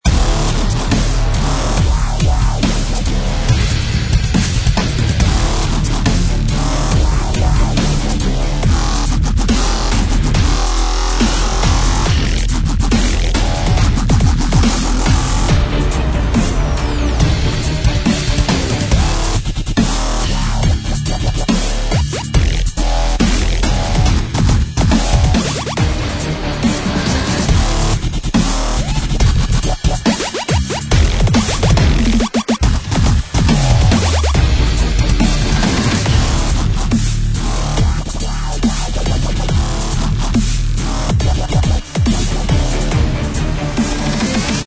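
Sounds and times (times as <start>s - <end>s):
epic hybrid dubstep wobble bass loop: 0.0s - 44.6s.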